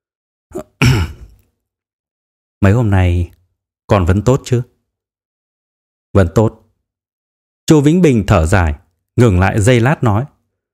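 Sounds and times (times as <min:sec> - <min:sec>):
man clearing his throat: 0:00.5 - 0:01.4
speech: 0:02.6 - 0:04.7, 0:06.1 - 0:06.6, 0:07.7 - 0:10.3.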